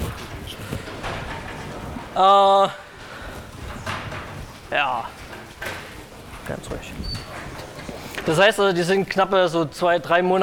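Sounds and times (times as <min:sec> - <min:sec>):
murmur of room noise: 0:00.0 - 0:10.4
door swinging shut with squealing creak of its hinges: 0:00.1 - 0:02.2, 0:02.9 - 0:08.5
speech: 0:02.2 - 0:02.8, 0:04.7 - 0:05.2, 0:06.5 - 0:07.0, 0:08.2 - 0:10.4.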